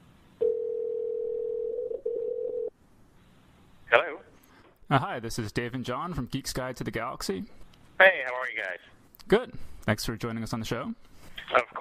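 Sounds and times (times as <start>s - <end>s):
telephone dial tone: 0.4s - 2.7s
speech: 4.9s - 11.6s.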